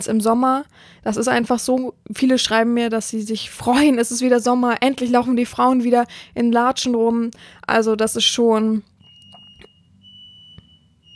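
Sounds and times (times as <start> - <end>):
speech: 0.0 - 8.9
smoke detector beeping: 8.9 - 11.1.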